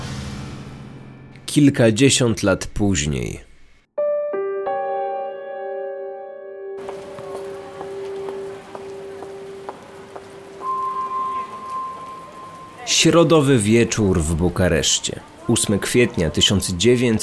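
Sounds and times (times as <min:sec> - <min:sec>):
speech: 0:01.5 - 0:03.5, 0:13.0 - 0:17.2
soft sustained musical tones: 0:04.7 - 0:13.4
steady rain: 0:06.8 - 0:17.2.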